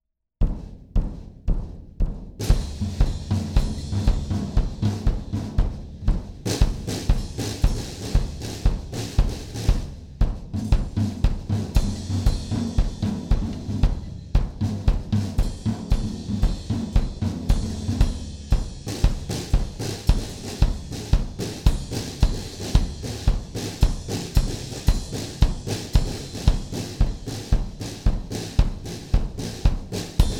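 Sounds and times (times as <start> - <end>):
drum interlude: 0.4 - 30.3.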